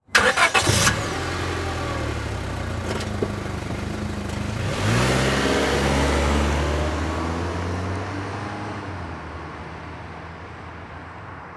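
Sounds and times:
Honda Civic engine starting: 0.0s - 8.0s
Honda Civic driving off slowly: 0.1s - 8.9s.

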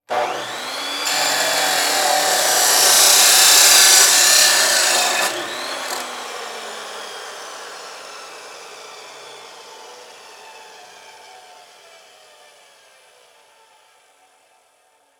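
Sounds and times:
industrial chop saw running: 0.0s - 10.4s.

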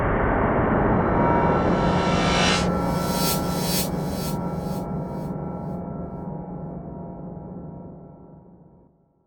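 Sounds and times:
digital low frequency rumble: 0.1s - 5.3s
reversed electronic whoosh with digital low frequency rumble: 0.6s - 5.3s.

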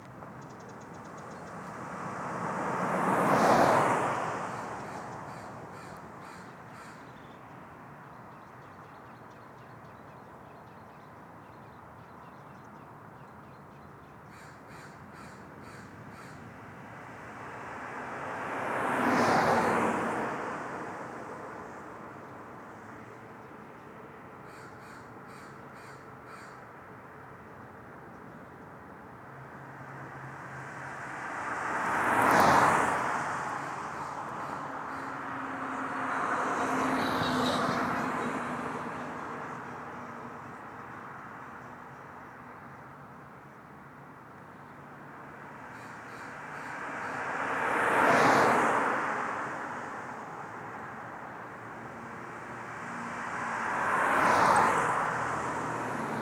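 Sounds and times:
cars driving by in daytime: 1.5s - 5.7s, 16.5s - 22.2s, 29.5s - 41.6s, 45.2s - 56.2s
crow calling: 14.3s - 16.4s, 24.5s - 26.6s.

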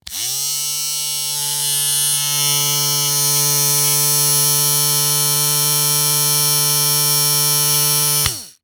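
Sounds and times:
small industry tool motor running: 0.0s - 8.6s.

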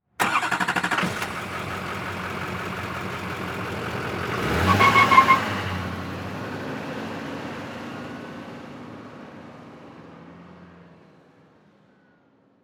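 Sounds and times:
diesel truck driving off and peeling out: 0.2s - 7.2s.

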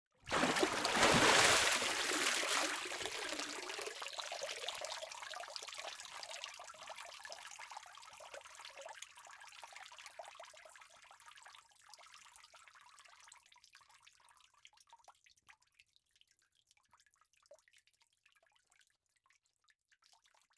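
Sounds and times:
water dripping: 0.3s - 5.0s.

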